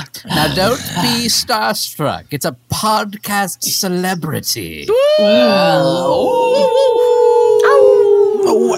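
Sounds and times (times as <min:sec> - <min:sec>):
speech: 0:00.4 - 0:07.9
wolves howling in a layered chorus: 0:05.0 - 0:08.7.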